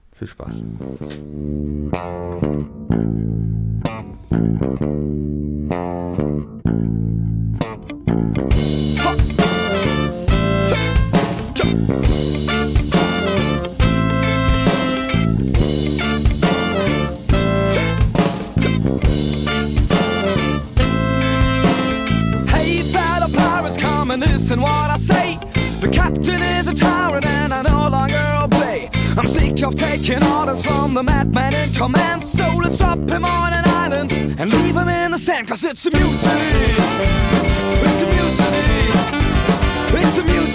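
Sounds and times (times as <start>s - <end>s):
speech: 0.2s - 3.3s, 30.1s - 33.6s, 34.4s - 39.2s
recorded song's instrumental intro with band: 0.6s - 35.2s, 35.9s - 40.5s.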